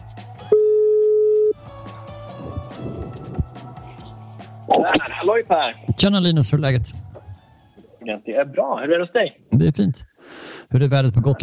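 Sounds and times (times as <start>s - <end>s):
telephone ringback tone while placing a call: 0.5s - 1.6s
speech: 4.8s - 7.0s, 8.0s - 10.1s, 10.7s - 11.4s.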